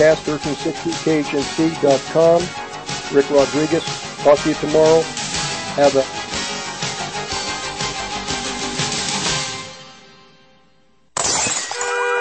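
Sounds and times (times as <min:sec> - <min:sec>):
speech: 0:00.0 - 0:05.2, 0:05.8 - 0:06.2
glass shards tinkling and scattering: 0:11.2 - 0:12.2
glass window shattering: 0:11.2 - 0:12.2.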